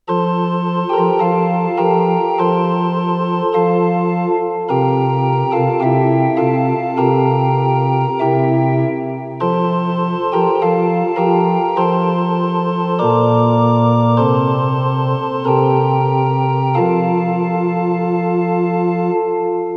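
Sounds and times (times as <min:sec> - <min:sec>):
organ playing a Kyrie in F major in Ukraine: 0:00.1 - 0:19.7.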